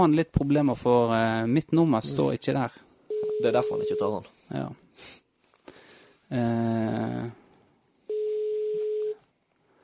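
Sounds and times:
speech: 0.0s - 5.2s, 6.3s - 7.4s
ringing signal of an outgoing phone call: 3.1s - 4.2s, 8.1s - 9.2s.

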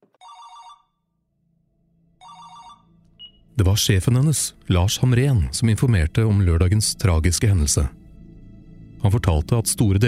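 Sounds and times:
mobile phone ringtone: 0.2s - 1.0s, 2.2s - 3.4s
speech: 3.6s - 8.0s, 9.0s - 10.0s.

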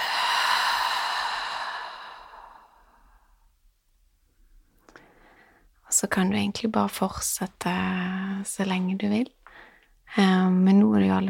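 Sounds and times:
long forceful exhale through the mouth: 0.0s - 3.2s
speech: 6.0s - 9.4s, 10.1s - 11.2s.

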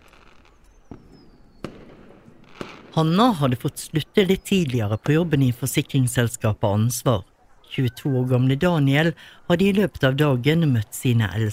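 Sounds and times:
fireworks bursts exploding in the sky: 0.0s - 6.1s
speech: 3.0s - 11.5s.

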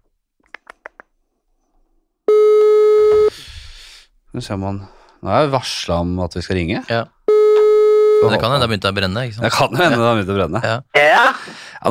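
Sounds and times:
ringback tone on an outgoing phone call: 2.3s - 3.3s
speech: 4.4s - 7.2s, 8.2s - 11.9s
phone line clicks on an outgoing call: 7.4s - 7.8s.

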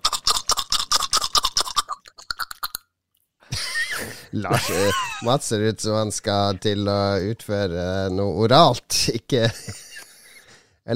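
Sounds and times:
wet scratchy mouth sound of tongue pushing under lip: 0.0s - 2.9s
laughter: 3.5s - 5.4s, 9.4s - 10.2s
speech: 4.3s - 9.8s.

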